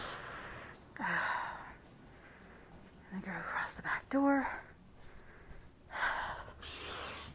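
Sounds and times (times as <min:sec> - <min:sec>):
speech: 0:01.0 - 0:01.2, 0:03.1 - 0:04.6
spray bottle spraying liquid underneath things: 0:06.6 - 0:07.3.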